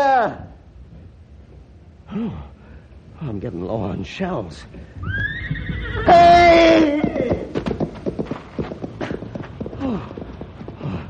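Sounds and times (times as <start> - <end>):
speech: 0.2 - 0.5, 2.1 - 2.5, 3.2 - 7.0, 9.8 - 10.1
horse hooves clattering as it runs off: 4.7 - 11.0
horse whinnying: 5.0 - 7.6.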